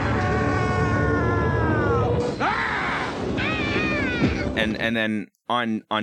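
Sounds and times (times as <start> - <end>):
villain screaming with wavering sliding pitch: 0.0 - 4.6
speech: 4.6 - 6.0.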